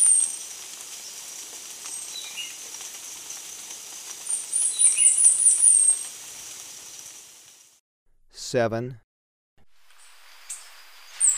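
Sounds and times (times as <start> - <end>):
steady hiss: 0.0 - 7.8, 9.8 - 11.3
chestnut-capped brush finch uttering a shrill wavering high phrase in Ecuador: 4.4 - 6.0
speech: 8.5 - 9.0.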